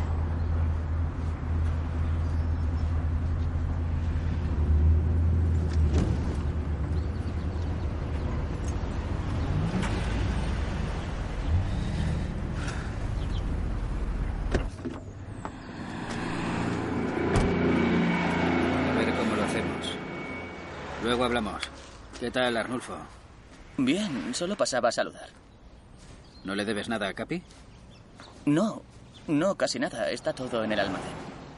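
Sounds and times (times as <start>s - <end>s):
car engine rumbling while driving through a gate into a property: 0.0s - 20.8s
speech: 22.2s - 23.2s, 23.8s - 25.4s, 26.4s - 27.7s, 28.4s - 31.3s.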